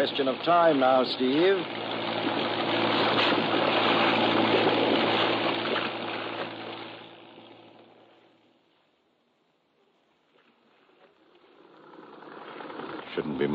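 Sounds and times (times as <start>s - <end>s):
speech: 0.0s - 3.8s
rushing, splashing river water: 0.0s - 7.3s
boat engine droning travelling up a river: 0.0s - 8.7s, 10.5s - 13.5s.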